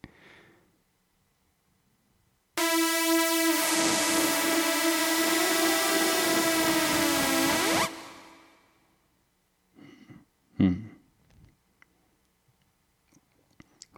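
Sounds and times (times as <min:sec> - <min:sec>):
Yamaha AN2015 synthesizer buzzy note: 0:02.6 - 0:08.6.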